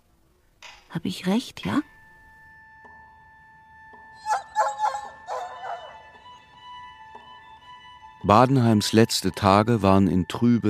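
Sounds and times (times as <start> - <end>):
speech: 0.9 - 2.0, 8.3 - 10.6
steady tonal hum: 1.0 - 10.6
dogs barking and yipping: 4.2 - 6.2.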